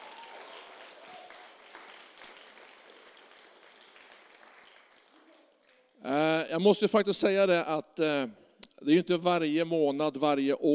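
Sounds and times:
crowd applauding in a large room: 0:00.0 - 0:06.2
speech: 0:06.0 - 0:10.7.

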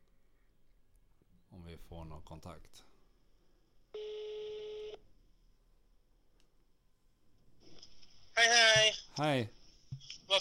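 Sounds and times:
speech: 0:01.7 - 0:02.9, 0:09.2 - 0:10.3
electronic telephone tone of a call connecting: 0:04.0 - 0:05.0.

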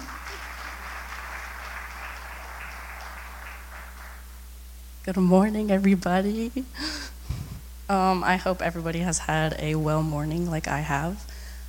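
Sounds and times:
crowd at a church service in Tallahassee applauding: 0:00.0 - 0:04.4
low hum: 0:00.0 - 0:11.6
speech: 0:05.0 - 0:07.0, 0:07.9 - 0:11.3.

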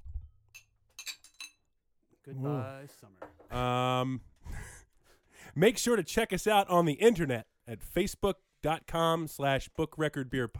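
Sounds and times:
glasses clinking in a toast: 0:00.5 - 0:01.7
speech: 0:02.3 - 0:04.3, 0:05.6 - 0:10.5.

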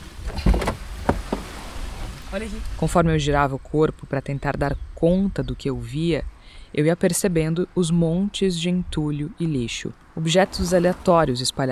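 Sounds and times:
car door opening with latch clack: 0:00.2 - 0:02.2
speech: 0:02.3 - 0:11.6.

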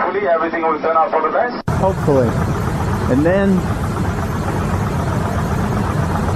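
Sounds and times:
speech: 0:00.2 - 0:03.9
strong vibration inside an airplane cabin: 0:01.7 - 0:06.3.

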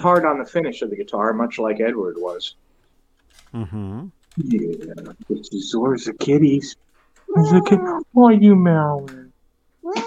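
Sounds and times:
speech: 0:00.0 - 0:02.7, 0:03.5 - 0:09.2
cat meowing: 0:07.3 - 0:08.1, 0:09.8 - 0:10.0.

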